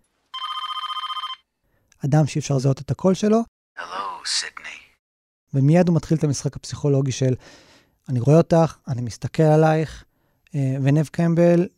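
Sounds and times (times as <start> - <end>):
telephone ringing: 0.3 - 1.5
speech: 2.0 - 4.8, 5.5 - 11.7.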